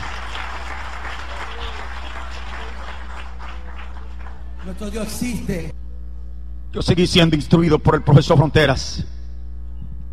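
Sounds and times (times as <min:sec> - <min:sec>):
crowd applauding: 0:00.0 - 0:05.7
low hum: 0:00.0 - 0:10.1
speech: 0:04.7 - 0:05.8, 0:06.7 - 0:09.1.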